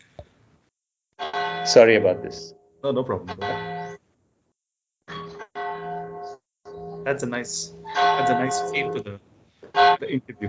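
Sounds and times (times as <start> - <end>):
bells ringing at nine o'clock: 1.4 - 2.5, 3.3 - 4.0, 5.1 - 9.1, 9.8 - 10.4
speech: 1.7 - 3.8, 7.1 - 10.4.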